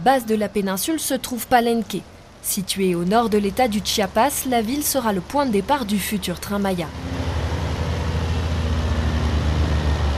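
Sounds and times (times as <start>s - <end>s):
speech: 0.0s - 7.2s
heavy trucks rumbling past at a construction site: 3.0s - 10.1s.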